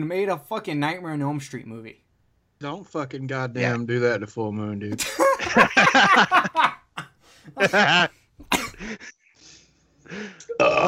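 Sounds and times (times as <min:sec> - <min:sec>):
speech: 0:00.0 - 0:02.0, 0:02.6 - 0:06.6, 0:07.5 - 0:08.2, 0:10.1 - 0:10.8
hearty breathy laughter: 0:05.0 - 0:09.1
harsh coughs and throat-clearing bursts: 0:07.6 - 0:09.0.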